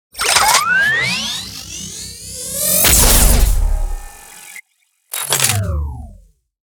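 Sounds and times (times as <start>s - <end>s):
plasma gun: 0.1s - 6.2s.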